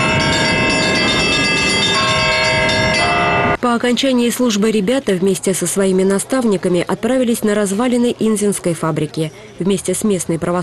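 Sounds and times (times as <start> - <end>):
cathedral church bells ringing a peal: 0.0 - 3.6
speech: 3.6 - 10.6.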